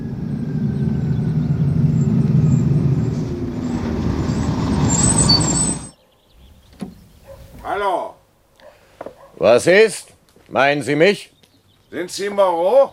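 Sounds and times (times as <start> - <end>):
bus engine rumble arriving at terminal stop after rain: 0.0 - 7.7
speech: 9.4 - 11.3, 11.9 - 12.9.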